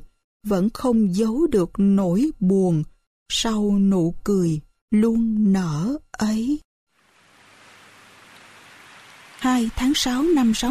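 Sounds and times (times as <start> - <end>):
speech: 0.4 - 6.7, 9.4 - 10.6
afternoon rain pattering onto a leaf roof and foliage: 7.0 - 10.6.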